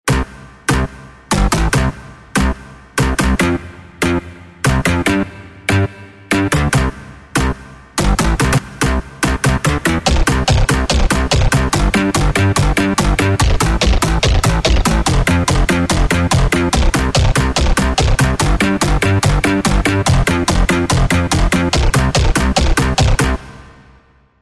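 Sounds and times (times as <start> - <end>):
rave bass music: 0.1 - 23.8.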